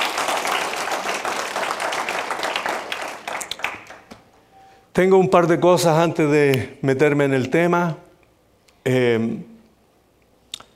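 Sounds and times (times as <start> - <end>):
crowd applauding: 0.0 - 4.4
speech: 5.0 - 8.0, 8.8 - 9.5.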